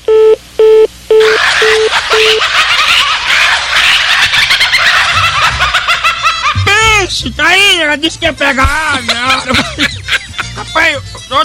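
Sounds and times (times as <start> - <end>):
touch-tone beeps of a telephone number being dialed: 0.1 - 2.4
laughter: 1.2 - 7.0, 8.7 - 11.4
speech: 7.3 - 10.0.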